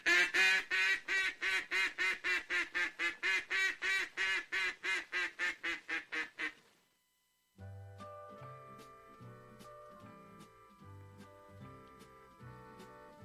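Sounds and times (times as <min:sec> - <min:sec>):
duck-hunting call blown imitating duck quacks: 0:00.0 - 0:06.6.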